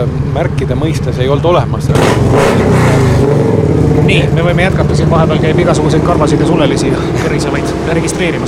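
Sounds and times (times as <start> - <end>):
speech: 0.0 - 8.4
motor vehicle engine revving: 1.9 - 8.4.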